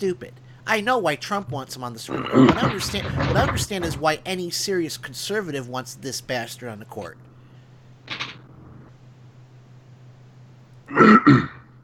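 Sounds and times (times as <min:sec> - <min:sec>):
speech: 0:00.0 - 0:07.3, 0:11.0 - 0:11.6
faint steady low hum: 0:00.0 - 0:11.8
sick person clearing throat: 0:02.1 - 0:02.9, 0:10.9 - 0:11.7.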